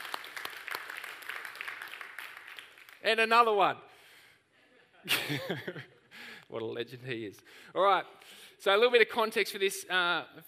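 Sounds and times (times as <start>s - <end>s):
audience applause: 0.0s - 3.0s
speech: 3.0s - 3.9s, 5.0s - 5.9s, 6.5s - 10.4s.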